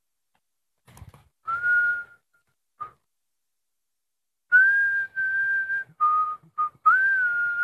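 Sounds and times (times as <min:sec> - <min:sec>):
person whistling a simple tune: 0:01.4 - 0:03.1, 0:04.5 - 0:07.6.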